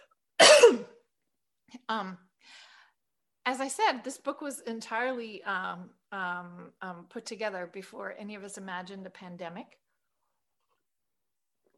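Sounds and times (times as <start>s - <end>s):
person coughing: 0.0s - 1.0s
speech: 1.9s - 2.6s, 3.4s - 9.8s.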